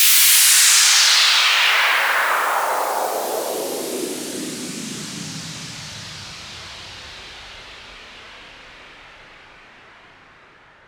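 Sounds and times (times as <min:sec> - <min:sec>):
downward sweep sound effect: 0:00.0 - 0:06.7.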